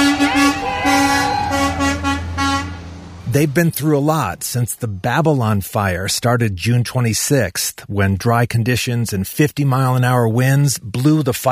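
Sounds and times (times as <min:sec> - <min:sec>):
fire truck horns honking: 0:00.0 - 0:03.2
fire truck engine rumble: 0:00.0 - 0:07.3
speech: 0:03.3 - 0:11.5.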